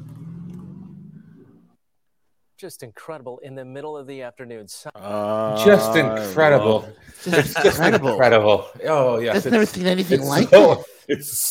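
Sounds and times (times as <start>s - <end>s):
car engine rumbling as the car speeds away: 0.0s - 1.7s
speech: 2.6s - 11.4s
laughter: 5.0s - 11.4s.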